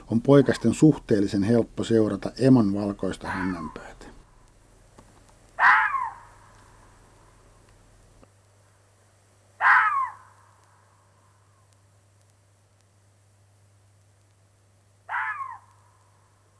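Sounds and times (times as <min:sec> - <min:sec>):
faint low hum: 0:00.0 - 0:16.5
speech: 0:00.1 - 0:04.0
red fox hoarse screeching: 0:03.2 - 0:03.9, 0:05.6 - 0:06.6, 0:09.6 - 0:10.5, 0:15.1 - 0:15.9.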